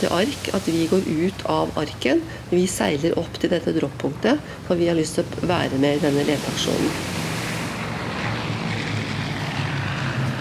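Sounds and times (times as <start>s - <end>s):
speech: 0.0s - 7.2s
Orion propeller patrol aircraft engines droning overhead: 4.4s - 10.3s.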